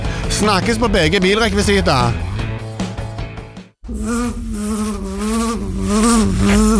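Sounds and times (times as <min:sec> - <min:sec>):
speech: 0:00.3 - 0:02.3, 0:03.9 - 0:06.7
bees buzzing in a bee yard: 0:03.9 - 0:06.7.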